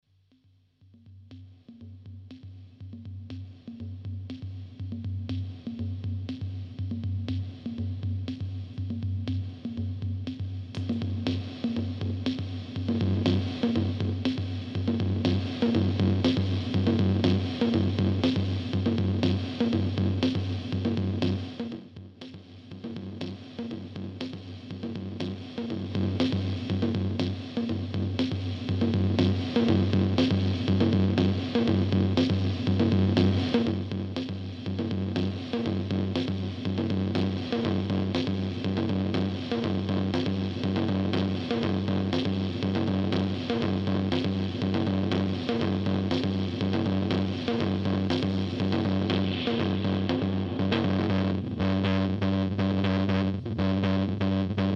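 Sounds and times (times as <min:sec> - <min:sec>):
drum machine beat: 0:00.3 - 0:54.7.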